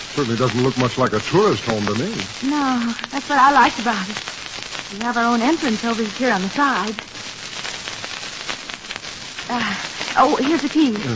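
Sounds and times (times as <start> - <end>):
rain falling: 0.0 - 11.1
speech: 0.2 - 7.1, 9.5 - 11.1.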